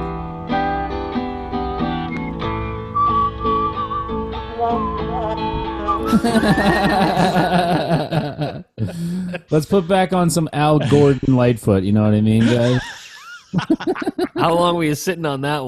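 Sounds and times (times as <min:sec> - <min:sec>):
instrumental band backing: 0:00.0 - 0:07.6
whistled melody in an old song: 0:01.5 - 0:07.6
laughter: 0:06.0 - 0:11.6, 0:12.3 - 0:14.8
speech: 0:06.1 - 0:07.6, 0:09.5 - 0:15.6.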